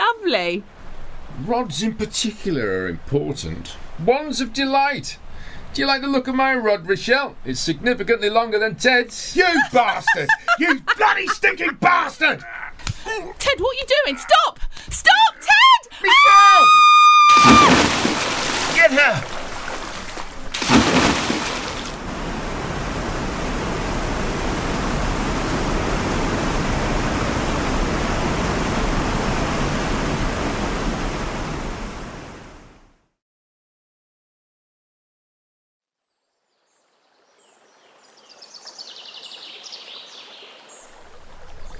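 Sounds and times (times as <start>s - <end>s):
speech: 0.2s - 0.7s, 1.4s - 15.3s, 16.0s - 17.9s, 18.8s - 19.3s
laughter: 9.5s - 12.8s
rushing flowing water of a river: 16.1s - 32.7s, 37.5s - 41.7s.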